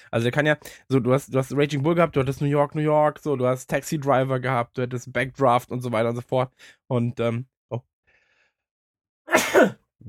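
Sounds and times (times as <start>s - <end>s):
speech: 0.0s - 7.9s, 9.3s - 10.0s
single sharp sneeze: 9.3s - 9.8s.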